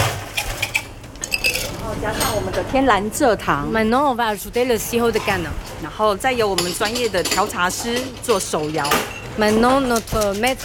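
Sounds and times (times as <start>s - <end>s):
low hum: 0.0s - 10.6s
ice cubes clattering into a glass holding tapioca pearls for milk tea: 0.7s - 1.8s
speech: 2.0s - 10.6s.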